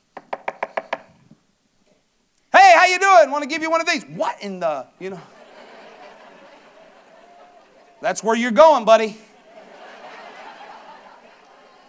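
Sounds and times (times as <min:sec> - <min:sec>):
quick raps on a door: 0:00.2 - 0:01.1
speech: 0:02.9 - 0:05.4, 0:08.0 - 0:09.3
laughter: 0:05.1 - 0:08.4, 0:09.2 - 0:11.8.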